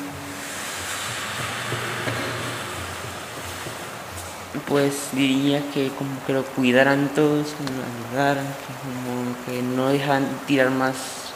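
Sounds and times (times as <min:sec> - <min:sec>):
river water splashing against rocks: 0:00.0 - 0:08.6
speech: 0:04.6 - 0:11.2.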